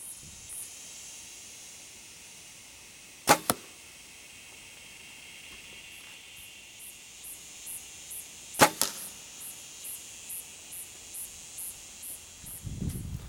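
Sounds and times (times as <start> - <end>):
faint steady hiss: 0.0 - 13.2
arrow shot from a bow hitting a target about 40 yards off: 3.3 - 3.7, 8.6 - 9.1.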